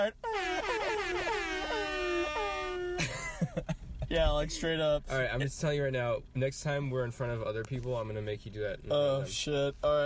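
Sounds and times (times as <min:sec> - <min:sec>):
speech: 0:00.0 - 0:00.2, 0:04.1 - 0:10.0
voice imitating an air horn: 0:00.0 - 0:03.1.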